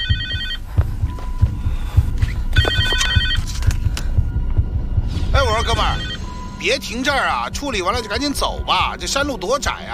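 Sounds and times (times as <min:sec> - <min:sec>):
mobile phone ringing with trilling electronic tones: 0:00.0 - 0:00.7, 0:02.5 - 0:03.8, 0:05.5 - 0:06.5
low thumping pulse: 0:00.0 - 0:09.9
speech: 0:06.6 - 0:09.9.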